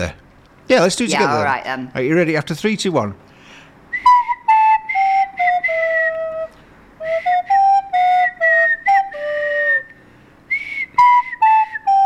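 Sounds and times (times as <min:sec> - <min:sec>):
speech: 0:00.0 - 0:03.3
two people whistling a melody together: 0:03.9 - 0:12.0.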